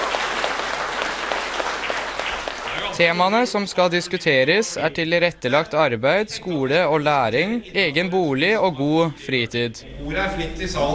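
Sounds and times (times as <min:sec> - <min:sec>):
audience applause at a political panel debate: 0:00.0 - 0:03.2
speech: 0:03.0 - 0:10.9.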